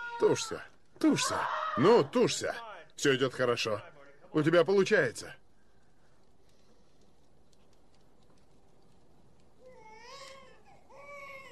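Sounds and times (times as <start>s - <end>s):
steady low hiss: 0.0s - 11.4s
speech: 0.2s - 5.4s
newborn baby boy crying just after birth: 9.6s - 11.4s.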